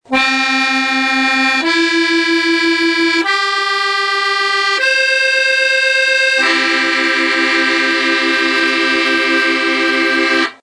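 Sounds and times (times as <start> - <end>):
professional special Scottish musette bagpipe: 0.1 - 10.6.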